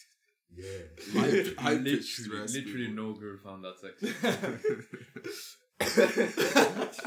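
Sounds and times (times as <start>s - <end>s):
speech: 0.5s - 7.0s
laughter: 1.0s - 1.9s, 4.0s - 7.0s
person coughing into a microphone: 5.8s - 6.6s.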